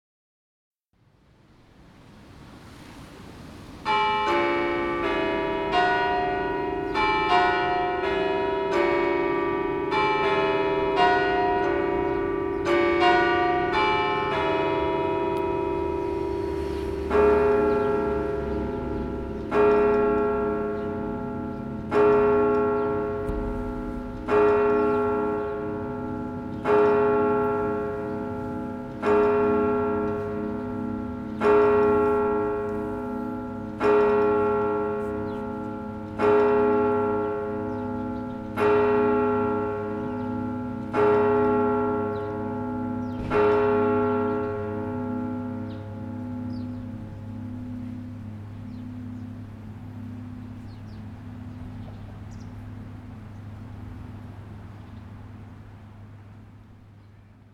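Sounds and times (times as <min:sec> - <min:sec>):
church bells ringing at noon in Moudon: 0:03.8 - 0:57.5.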